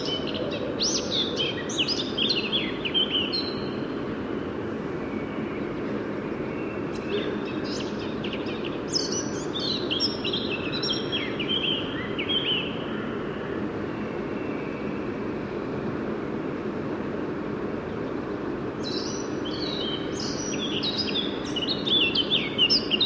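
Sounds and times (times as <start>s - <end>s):
Eurasian blackcap Sylvia atricapilla song: 0.0s - 3.8s, 6.9s - 12.8s, 18.8s - 23.0s
steady background noise: 0.0s - 23.0s.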